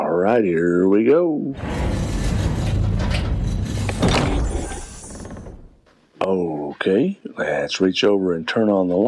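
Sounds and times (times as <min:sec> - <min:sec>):
speech: 0:00.2 - 0:02.2, 0:06.2 - 0:09.0
heavy old door scraping and creaking open: 0:01.6 - 0:05.8.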